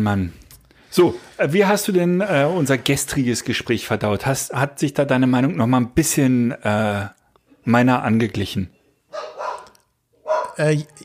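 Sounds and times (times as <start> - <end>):
speech: 0.0 - 9.2, 10.6 - 11.0
dog barking at arriving guests: 9.1 - 10.6.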